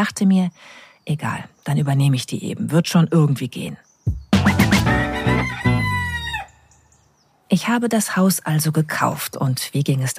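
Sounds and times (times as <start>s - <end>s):
speech: 0.0s - 3.8s, 7.5s - 10.1s
chickens clucking: 4.4s - 6.5s
rooster crowing: 4.7s - 7.0s.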